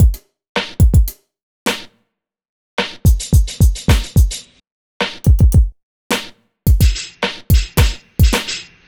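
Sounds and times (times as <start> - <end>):
hip hop beat stabs: 3.1 - 4.4, 5.2 - 8.8.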